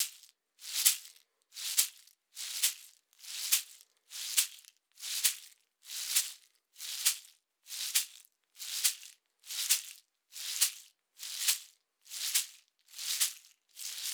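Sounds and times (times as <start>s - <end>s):
gourd shaker: 0.0s - 14.1s.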